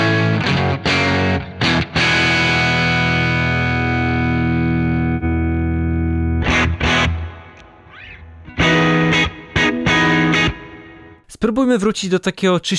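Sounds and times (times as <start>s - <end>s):
overdriven electric guitar through Greenback speakers: 0.0s - 11.2s
speech: 11.4s - 12.7s.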